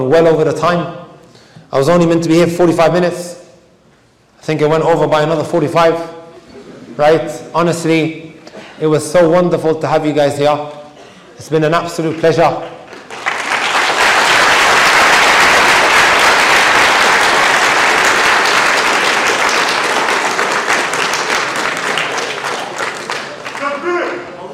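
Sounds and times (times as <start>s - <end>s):
speech: 0.0s - 1.0s, 1.7s - 3.4s, 4.5s - 6.2s, 7.0s - 8.2s, 8.8s - 10.8s, 11.4s - 12.8s
large audience applauding at the close of a talk: 12.1s - 24.2s.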